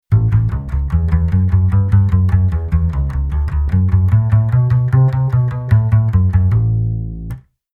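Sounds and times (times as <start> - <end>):
rock and roll bass line: 0.0 - 7.4.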